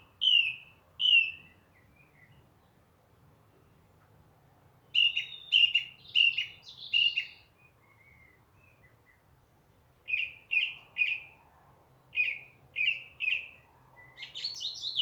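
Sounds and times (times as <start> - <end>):
song thrush song with clear whistled notes: 0.0 - 2.8, 4.9 - 9.3, 10.1 - 11.4, 12.1 - 14.9.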